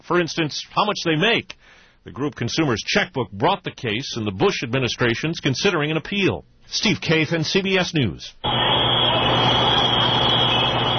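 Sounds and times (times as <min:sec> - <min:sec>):
speech: 0:00.1 - 0:08.7
firefighters' emergency locator alarms going off at a blaze: 0:08.4 - 0:10.9.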